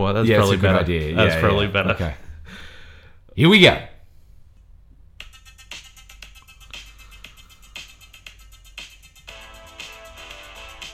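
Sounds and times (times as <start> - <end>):
speech: 0.0 - 2.6, 3.4 - 3.9
upbeat 1980s synth-pop song through a small tinny phone speaker: 5.2 - 10.9.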